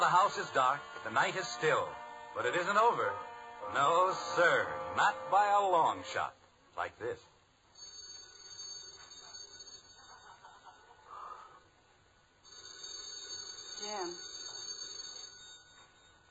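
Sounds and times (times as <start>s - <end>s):
man calling out: 0.0s - 7.0s
speech: 0.0s - 7.3s, 13.8s - 14.3s
telephone bell ringing: 7.8s - 11.0s, 12.4s - 16.2s.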